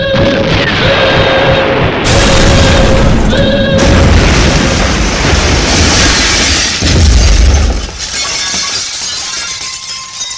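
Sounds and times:
huge roaring explosion with deep rumbling shock wave: 0.1s - 8.0s
shattering and crashing debris: 2.0s - 10.3s.

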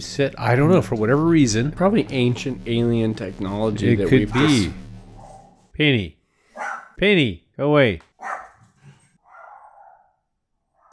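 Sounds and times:
speech: 0.0s - 4.8s, 5.8s - 8.4s
small dog of about 8 pounds barking: 6.6s - 6.9s, 8.2s - 8.6s, 9.3s - 10.1s.

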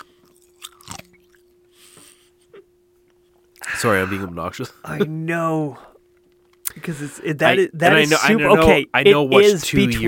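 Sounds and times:
teeth crunching ice: 0.0s - 1.5s
faint steady hum: 0.0s - 10.0s
speech: 3.8s - 5.9s, 6.8s - 10.0s.

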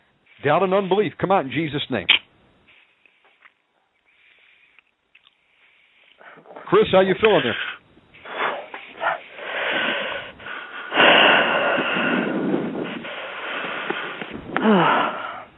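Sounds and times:
speech: 0.4s - 2.2s, 6.7s - 7.7s
labored wheezing breathing: 4.1s - 15.5s
snorting gasps: 6.2s - 15.5s.

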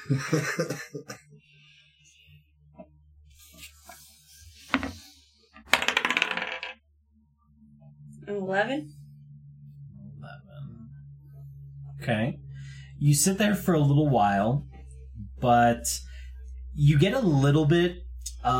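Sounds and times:
laughter: 0.0s - 1.2s
speech: 0.0s - 1.3s, 8.3s - 9.0s, 12.0s - 12.4s, 13.0s - 14.7s, 15.4s - 16.1s, 16.8s - 18.5s
dice rolling across a hard tabletop: 5.6s - 6.8s.

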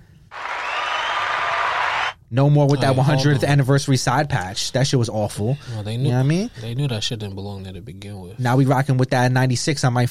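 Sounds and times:
applause from a group of people: 0.3s - 2.2s
speech: 2.3s - 10.0s.

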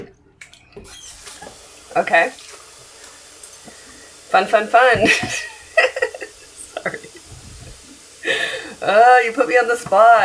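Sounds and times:
water running from a tap: 0.8s - 10.2s
speech: 2.0s - 2.4s, 4.3s - 5.5s, 8.8s - 10.2s
laughter: 4.8s - 8.8s.

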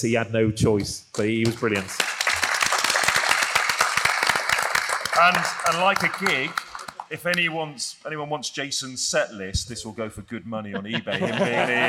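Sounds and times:
speech: 0.0s - 2.1s, 5.2s - 11.8s
crowd applauding: 1.4s - 7.4s
laughter: 10.7s - 11.8s.

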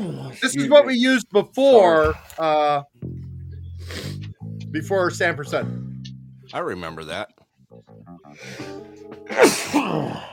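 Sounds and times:
speech: 0.0s - 2.9s, 3.9s - 5.8s, 6.5s - 7.8s, 8.4s - 10.3s
sneeze: 9.3s - 10.2s.

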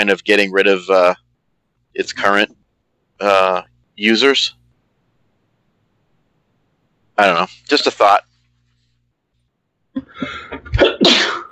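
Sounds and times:
speech: 0.0s - 1.2s, 2.0s - 2.6s, 3.2s - 4.6s, 7.2s - 8.3s
person sneezing: 10.7s - 11.4s.

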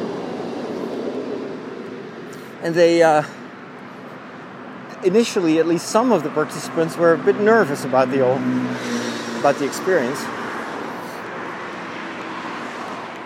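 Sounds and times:
double-decker train passing: 0.0s - 3.4s, 7.4s - 13.2s
speech: 2.6s - 3.4s, 5.0s - 10.4s.

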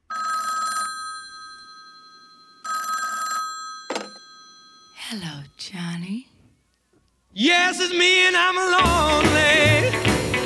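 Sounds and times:
old-style telephone bell ringing: 0.1s - 5.1s
speech: 5.1s - 6.3s, 7.4s - 9.7s.

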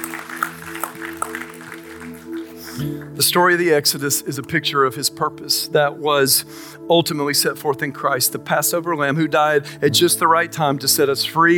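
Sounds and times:
crowd clapping in a large room: 0.0s - 3.4s
speech: 2.8s - 11.5s.

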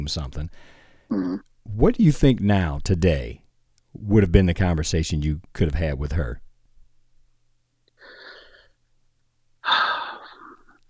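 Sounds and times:
speech: 0.0s - 3.4s, 4.0s - 6.4s
heavy breathing: 8.0s - 8.8s, 9.6s - 10.7s.

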